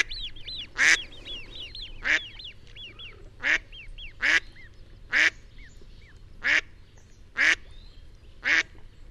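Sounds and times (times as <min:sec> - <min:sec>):
mallard quacking loudly and harshly: 0:00.0 - 0:05.4.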